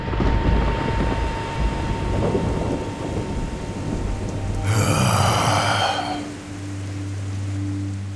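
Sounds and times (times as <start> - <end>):
deep rumbling roar of thunder: 0.0 - 6.4
rain falling: 0.0 - 8.1.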